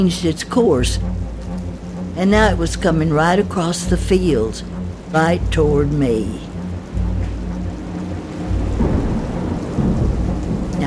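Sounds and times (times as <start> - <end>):
speech: 0.0 - 1.3, 2.2 - 6.5
steady rain in a heavy storm: 0.0 - 10.8
deep rumbling thunder in a heavy storm: 6.7 - 10.8.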